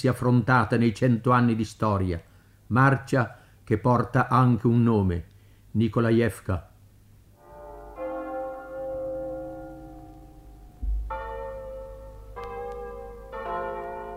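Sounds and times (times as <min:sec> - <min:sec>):
speech: 0:00.0 - 0:06.7
church bells ringing a double peal from a nearby village in the countryside: 0:07.4 - 0:14.1.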